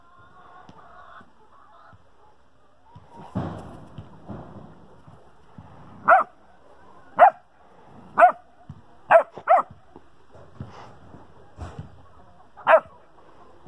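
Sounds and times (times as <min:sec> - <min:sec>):
puppy barking at chickens: 0:06.0 - 0:06.4, 0:07.2 - 0:07.5, 0:08.2 - 0:08.5, 0:09.1 - 0:09.8, 0:12.6 - 0:13.0.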